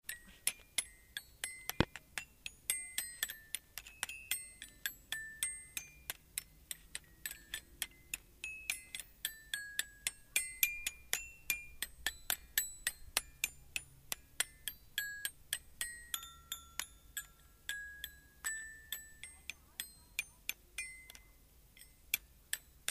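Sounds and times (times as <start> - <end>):
children's glockenspiel: 0.1 - 22.8.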